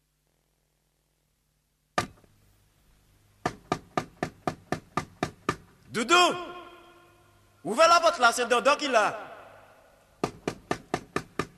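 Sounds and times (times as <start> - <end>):
quick knocks on a door: 3.4 - 5.6, 10.2 - 11.5
speech: 6.0 - 6.6, 7.6 - 9.3.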